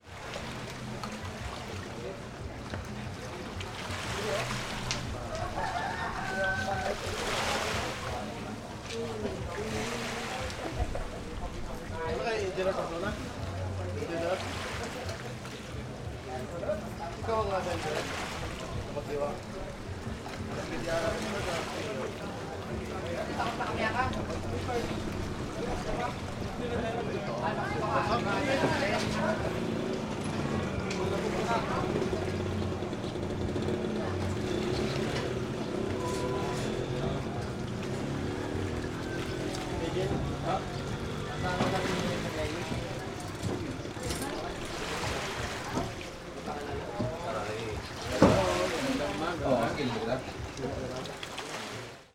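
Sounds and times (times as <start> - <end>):
voices in the background: 0.0 - 51.9
noise of the sea: 0.0 - 52.1.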